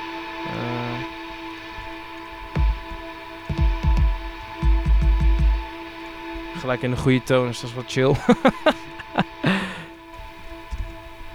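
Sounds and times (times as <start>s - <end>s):
deep punchy kick drum hits: 2.6s - 2.9s, 3.5s - 5.7s
speech: 6.6s - 8.9s
laughter: 6.6s - 9.9s.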